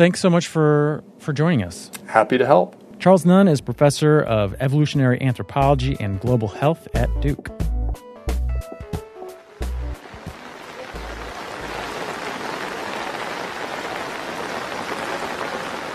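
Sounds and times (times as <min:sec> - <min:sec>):
speech: 0:00.0 - 0:07.6
heavy rain falling in western India: 0:09.2 - 0:15.9.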